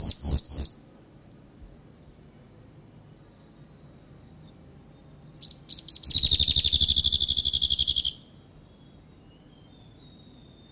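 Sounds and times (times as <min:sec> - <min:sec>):
male whitehead giving a territorial call: 0:00.0 - 0:00.9, 0:04.2 - 0:10.6.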